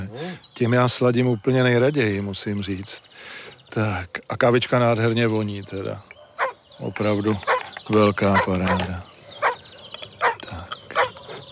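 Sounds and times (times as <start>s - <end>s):
speech: 0.2s - 6.1s, 6.8s - 9.1s
dog barking outdoors: 5.4s - 11.4s.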